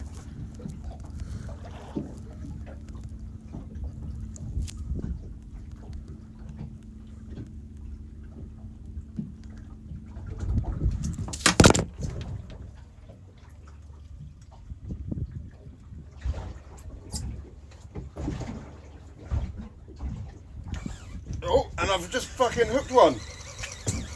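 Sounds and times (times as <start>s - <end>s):
choppy boat and water noise on the Hans Deeps reef: 0.0s - 24.1s
fishing reel screaming as line pays out to a fish: 20.7s - 24.1s
speech: 22.1s - 23.3s.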